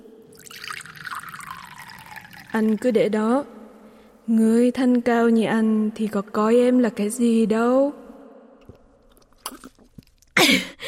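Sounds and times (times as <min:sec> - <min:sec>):
wine pouring from a pot spout into a cup: 0:00.3 - 0:03.2
speech: 0:02.6 - 0:03.6, 0:04.3 - 0:08.0.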